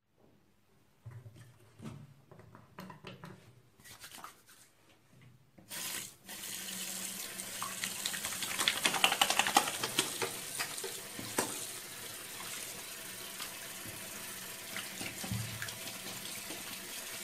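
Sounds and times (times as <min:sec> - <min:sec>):
person washing hands: 0:05.6 - 0:17.2.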